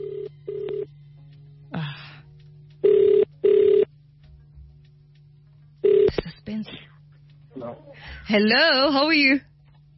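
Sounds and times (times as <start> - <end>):
phone line clicking and buzzing through short tones: 0.0 - 0.9, 2.8 - 3.9, 5.8 - 6.3
speech: 8.3 - 9.5.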